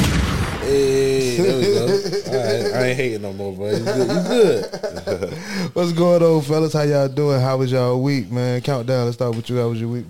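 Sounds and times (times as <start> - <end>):
booming gunshot sound effect: 0.0 - 0.7
laughter: 0.6 - 6.1
speech: 0.7 - 10.0.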